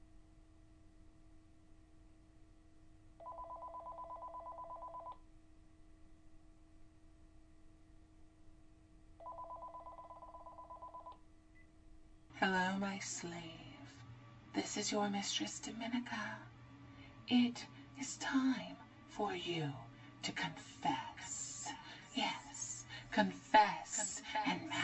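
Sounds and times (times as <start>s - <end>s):
steady low electrical hum: 0.0s - 24.8s
telephone line ringing with buzzing rings: 3.2s - 5.2s, 9.2s - 11.2s
speech: 12.8s - 13.6s, 14.6s - 16.6s, 17.3s - 21.4s, 22.2s - 22.4s, 23.2s - 24.8s.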